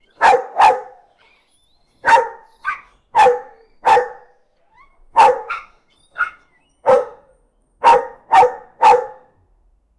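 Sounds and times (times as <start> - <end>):
angry German Shepherd dog barking: 0.2 - 1.1, 2.0 - 4.3, 5.1 - 9.3.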